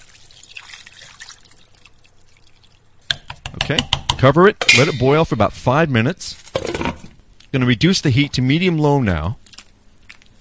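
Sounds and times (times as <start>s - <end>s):
stock poured into a cooking pot: 0.0s - 3.0s
speech: 3.7s - 6.4s, 7.5s - 9.4s.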